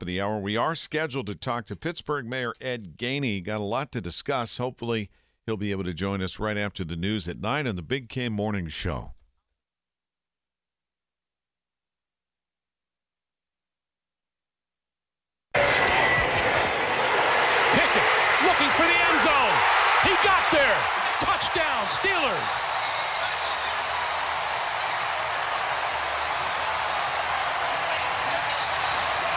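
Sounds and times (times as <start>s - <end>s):
speech: 0.0s - 9.2s, 20.8s - 23.4s
football stadium crowd cheering: 15.5s - 29.3s.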